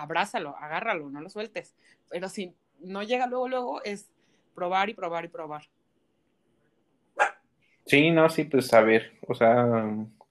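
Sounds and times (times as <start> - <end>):
speech: 0.0 - 5.8, 7.9 - 10.2
small dog barking: 7.2 - 7.4.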